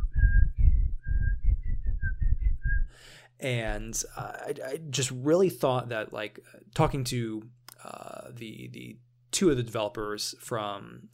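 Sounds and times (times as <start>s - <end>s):
low rhythmic rumble: 0.0s - 3.0s
person whistling a short melodic tune: 0.0s - 3.0s
speech: 3.4s - 11.1s.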